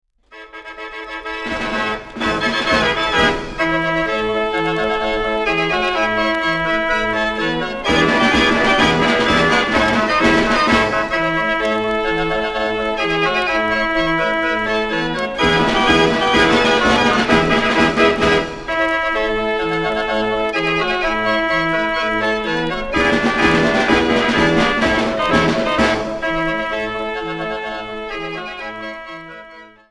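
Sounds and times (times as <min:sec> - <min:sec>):
fairground barrel organ playing: 0:00.6 - 0:29.9.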